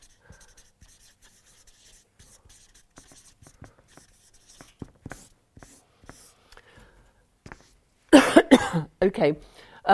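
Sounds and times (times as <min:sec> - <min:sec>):
pen scratching and tapping across paper while drawing: 0:00.0 - 0:06.4, 0:07.4 - 0:07.8
speech: 0:09.0 - 0:09.9.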